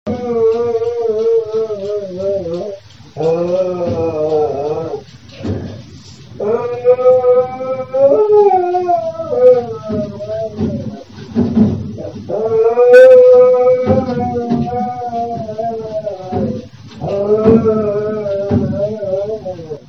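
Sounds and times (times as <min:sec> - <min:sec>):
dog howling: 0:00.1 - 0:19.8.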